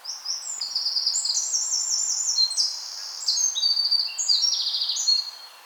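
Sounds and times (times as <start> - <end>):
Eurasian wren Troglodytes troglodytes singing: 0.1 - 5.5.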